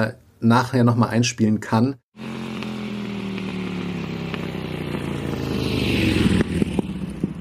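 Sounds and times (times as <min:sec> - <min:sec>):
speech: 0:00.0 - 0:02.3
small two-stroke moped engine running: 0:02.2 - 0:07.4.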